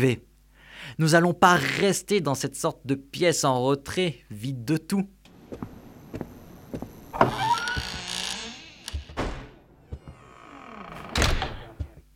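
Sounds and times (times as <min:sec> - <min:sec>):
speech: 0:00.0 - 0:00.3, 0:00.9 - 0:05.7
door being pushed open with a creaking squeal: 0:07.0 - 0:12.1.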